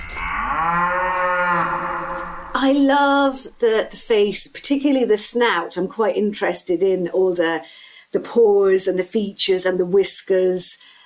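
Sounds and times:
cow mooing: 0.0s - 2.6s
speech: 2.6s - 10.9s.

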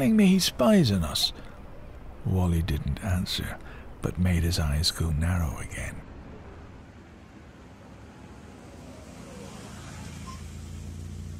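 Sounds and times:
speech: 0.0s - 1.4s, 2.2s - 6.1s
road noise: 0.0s - 11.3s
car engine rumbling while pulling up: 5.4s - 11.3s.

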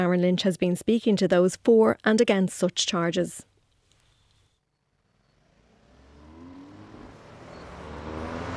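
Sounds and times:
speech: 0.0s - 3.5s
city noise in Dublin: 0.0s - 8.5s
low drone of car engines in Dublin road traffic: 4.9s - 8.5s
vehicle accelerating: 5.0s - 8.5s.

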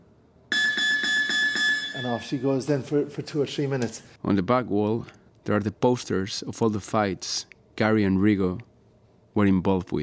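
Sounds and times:
gym round timer beeping: 0.5s - 2.6s
speech: 2.0s - 8.7s, 9.4s - 10.0s.

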